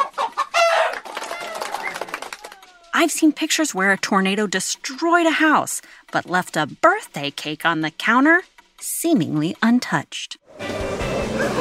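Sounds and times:
several chickens clucking and squawking: 0.0 - 2.9
speech: 3.0 - 10.4.

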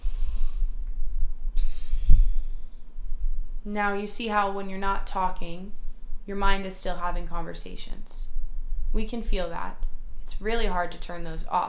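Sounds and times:
deep breath during a guided relaxation exercise: 0.0 - 0.9, 1.5 - 3.5
speech: 3.6 - 8.3, 8.9 - 11.6.

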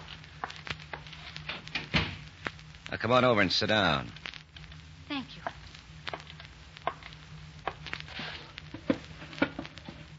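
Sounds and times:
door pushed shut with a soft dull thud: 1.8 - 2.2
speech: 2.9 - 4.2.

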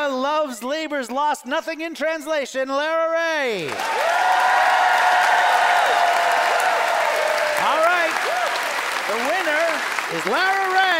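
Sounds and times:
speech: 0.4 - 4.6, 9.1 - 10.9
live audience applauding: 3.7 - 10.9.

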